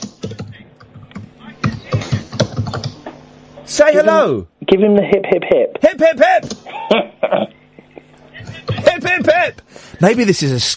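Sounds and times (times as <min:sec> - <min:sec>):
fingers typing on a computer keyboard: 0:00.0 - 0:03.0
speech: 0:03.7 - 0:07.5, 0:09.0 - 0:10.7
laughter: 0:06.6 - 0:09.2.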